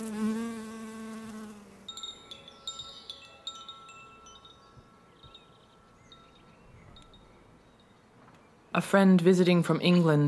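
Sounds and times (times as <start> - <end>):
bees buzzing inside a hive: 0.0 - 2.0
brief high-pitched chirping tones: 1.9 - 8.0
speech: 8.8 - 10.2.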